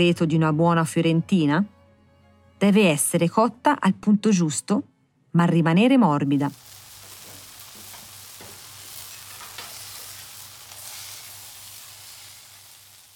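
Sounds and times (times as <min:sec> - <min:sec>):
speech: 0:00.0 - 0:01.7, 0:02.6 - 0:06.7
thick Florentine-style veal steak sizzling in a hot pan: 0:06.4 - 0:13.1.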